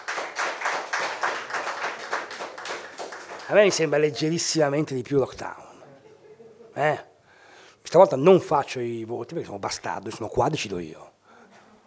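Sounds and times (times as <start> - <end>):
audience applauding a band at a live event: 0.0 - 4.5
speech: 3.5 - 5.6, 6.8 - 7.1, 7.9 - 11.1.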